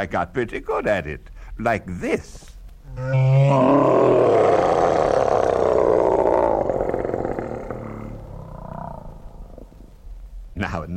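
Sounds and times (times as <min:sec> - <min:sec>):
speech: 0:00.0 - 0:04.4, 0:10.6 - 0:10.9
huge dragon roar: 0:02.9 - 0:09.9.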